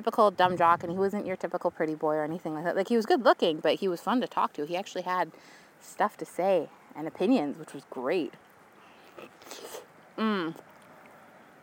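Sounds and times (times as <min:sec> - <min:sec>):
speech: 0:00.0 - 0:08.5, 0:09.2 - 0:10.7
wet biting and chewing into a peach: 0:09.0 - 0:11.2
short bright hum of a voice: 0:10.2 - 0:10.6.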